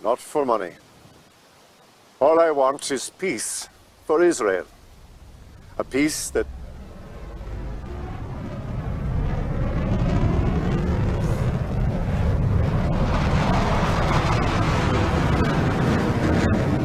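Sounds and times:
speech: 0.0s - 0.8s, 2.2s - 4.8s, 5.8s - 6.6s
military jets roaring overhead: 4.8s - 16.8s.

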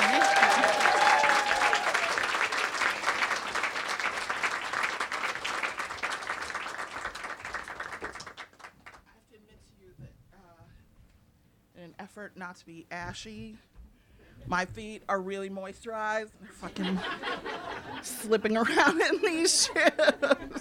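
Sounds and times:
whistle or cheer: 0.0s - 2.2s
crowd applauding welcoming a speaker: 0.0s - 9.0s
speech: 12.4s - 13.7s, 14.5s - 20.5s
laughter: 16.5s - 20.5s.

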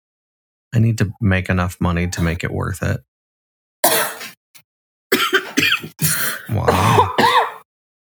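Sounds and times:
speech: 0.7s - 3.1s
harsh hacking coughing fit: 3.8s - 4.3s, 5.1s - 7.6s.

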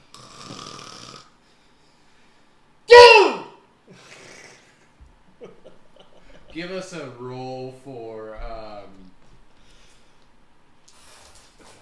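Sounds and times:
person imitating snoring: 0.0s - 1.4s, 4.0s - 4.7s
speech: 6.6s - 8.7s.

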